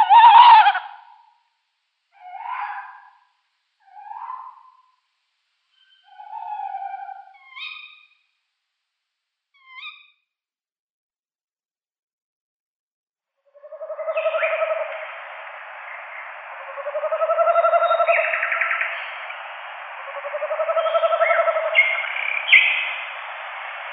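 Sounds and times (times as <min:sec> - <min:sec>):
tawny owl pair quavering hoots in display: 0:00.0 - 0:01.3, 0:02.1 - 0:03.2, 0:03.8 - 0:05.0, 0:05.7 - 0:08.2, 0:09.6 - 0:10.1, 0:13.4 - 0:23.9.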